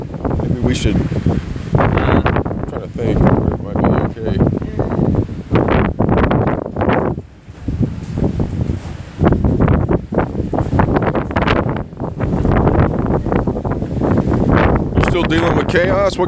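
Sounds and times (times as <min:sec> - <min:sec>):
strong outdoor wind gusting into microphone: 0:00.0 - 0:16.2
speech: 0:00.7 - 0:01.6, 0:02.8 - 0:04.8, 0:15.4 - 0:16.2.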